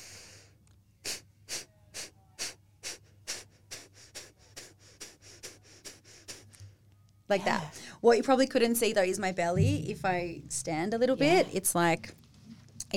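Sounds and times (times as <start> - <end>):
forceful exhalations with passive inhalations in a breathing exercise: 0.0 - 6.8
speech: 7.3 - 12.2.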